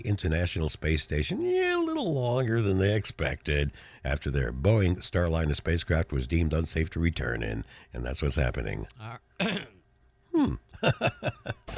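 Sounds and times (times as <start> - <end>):
speech: 0.0 - 9.7, 10.4 - 11.7
rough throat-clearing hack: 9.0 - 10.6
person coughing: 9.4 - 9.8
laughter: 10.8 - 11.7.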